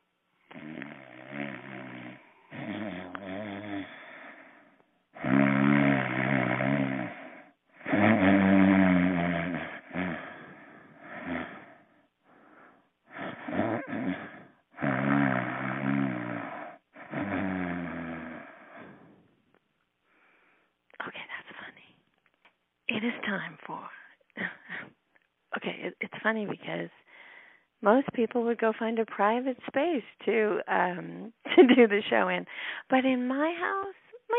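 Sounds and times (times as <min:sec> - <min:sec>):
person snoring with rasping rumbling breaths: 0:00.5 - 0:19.2
speech: 0:23.0 - 0:24.0, 0:25.8 - 0:27.0, 0:27.8 - 0:33.9.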